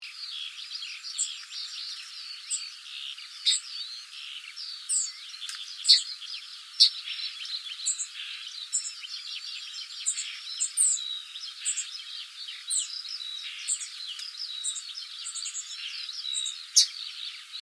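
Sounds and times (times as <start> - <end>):
yellowhammer calls: 0.0 - 17.5.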